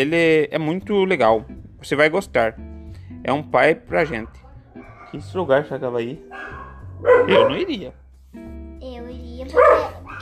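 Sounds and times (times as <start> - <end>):
speech: 0.0 - 4.4, 5.1 - 8.5, 9.4 - 10.0
dog barking: 3.9 - 5.6, 6.3 - 7.9, 9.5 - 10.2.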